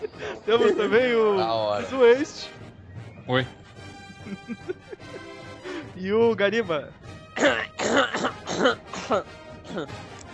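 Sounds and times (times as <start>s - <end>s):
laughter: 0.0s - 2.4s, 3.9s - 5.9s
speech: 0.1s - 2.7s, 3.3s - 3.6s, 6.0s - 7.6s, 8.2s - 10.1s
rasping throaty coughs: 7.4s - 10.0s.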